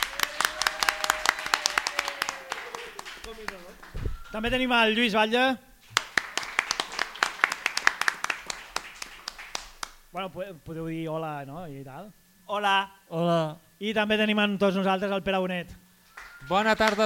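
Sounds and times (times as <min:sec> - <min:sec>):
small audience applauding a guest onto a programme: 0:00.0 - 0:04.0, 0:05.8 - 0:10.0, 0:16.1 - 0:17.0
speech: 0:03.3 - 0:05.7, 0:10.2 - 0:15.8, 0:16.4 - 0:17.0.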